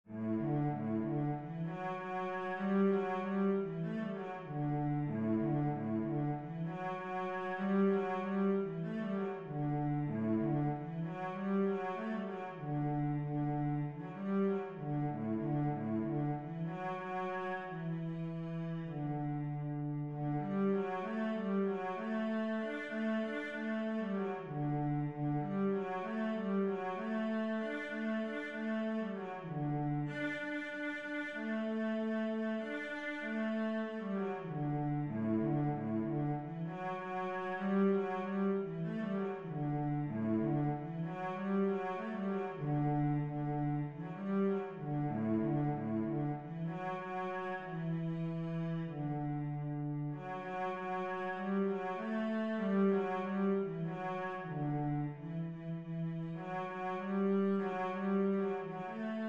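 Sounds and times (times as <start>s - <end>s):
cello playing: 0.1s - 59.2s.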